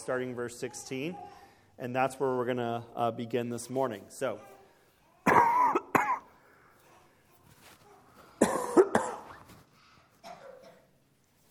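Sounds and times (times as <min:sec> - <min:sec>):
speech: 0:00.0 - 0:04.6
person recovering from allergies coughing: 0:05.2 - 0:06.3, 0:08.4 - 0:09.4, 0:10.2 - 0:10.9.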